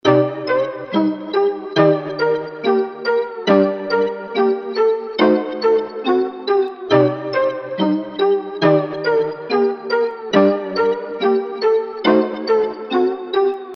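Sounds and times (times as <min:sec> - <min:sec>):
melody loop: 0:00.0 - 0:13.7.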